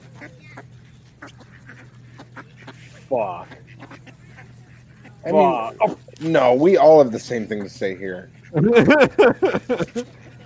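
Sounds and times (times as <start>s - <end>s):
duck quacking: 0.0s - 6.1s, 7.1s - 10.4s
speech: 3.1s - 3.6s, 5.2s - 10.2s
laughter: 8.5s - 10.4s.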